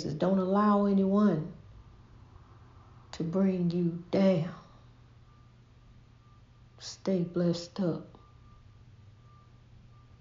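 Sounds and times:
speech: 0.0 - 1.6, 3.2 - 4.6, 6.8 - 8.2
alarm beeping in long tones: 3.6 - 10.1.

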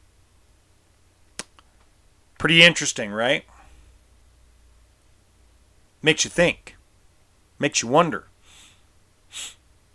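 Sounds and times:
speech: 2.4 - 3.5, 6.0 - 6.8, 7.6 - 8.3, 9.3 - 9.6
breathy nose sniff from allergies: 8.4 - 9.6.

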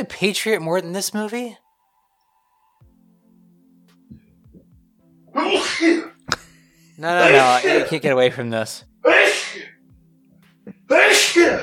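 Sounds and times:
speech: 0.0 - 1.6, 5.4 - 6.1, 7.0 - 9.4, 10.9 - 11.6
person sneezing: 5.4 - 6.4, 7.2 - 7.9, 9.0 - 9.8, 10.7 - 11.6.

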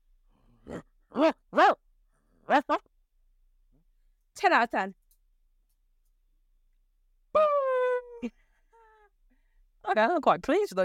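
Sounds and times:
person imitating dog barking: 0.6 - 1.8, 7.4 - 9.1
speech: 4.5 - 5.0, 8.2 - 8.4, 9.9 - 10.8.

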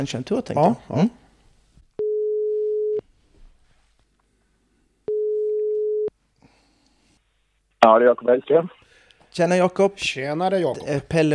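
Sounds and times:
speech: 0.0 - 1.2, 7.8 - 8.8, 9.4 - 11.3
telephone ringback tone while a call is being placed: 2.0 - 3.0, 5.1 - 6.1.

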